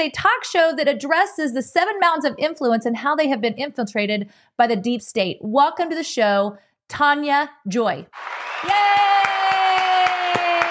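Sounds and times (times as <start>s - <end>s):
speech: 0.0s - 9.1s
crowd cheering and applause: 8.1s - 10.6s.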